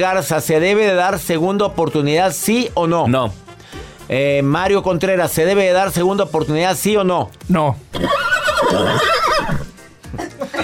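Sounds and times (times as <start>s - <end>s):
speech: 0.0s - 3.4s, 4.1s - 9.6s
horse whinnying: 7.9s - 9.8s.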